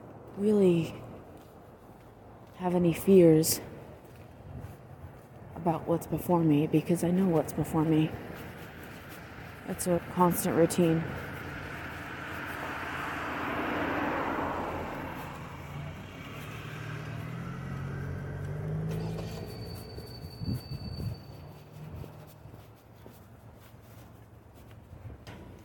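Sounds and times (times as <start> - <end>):
street noise: 0.0 - 25.6
speech: 0.4 - 1.0, 2.6 - 3.7, 5.6 - 8.4, 9.7 - 11.3
city bus passing by: 7.8 - 22.6.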